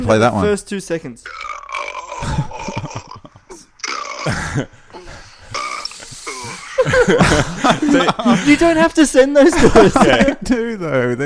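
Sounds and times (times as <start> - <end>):
speech: 0.0 - 1.4, 4.6 - 4.8, 7.0 - 11.2
man burping: 1.2 - 6.8
laughter: 2.2 - 3.6, 6.1 - 10.8.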